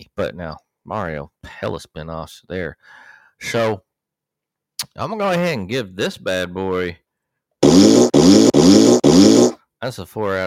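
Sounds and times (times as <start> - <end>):
speech: 0.0 - 3.9, 4.9 - 7.0, 9.8 - 10.4
fart sound effects: 7.6 - 9.6.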